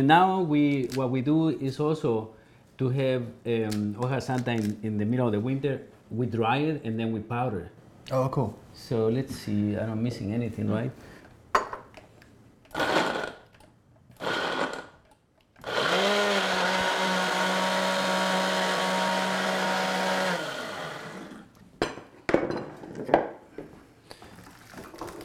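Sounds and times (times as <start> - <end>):
speech: 0.0 - 11.1
blender liquefying tomatillos, onions, green chilies and garlic: 12.7 - 13.5, 14.2 - 15.0, 15.6 - 21.6.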